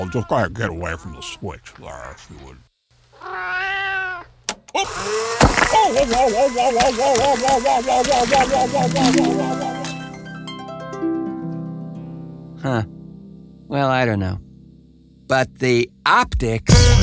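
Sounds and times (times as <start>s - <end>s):
cat meowing: 0.0s - 1.4s, 3.2s - 4.3s
speech: 0.0s - 3.6s, 4.7s - 9.6s, 12.6s - 13.0s, 13.7s - 14.5s, 15.3s - 16.9s
laughter: 4.8s - 10.0s.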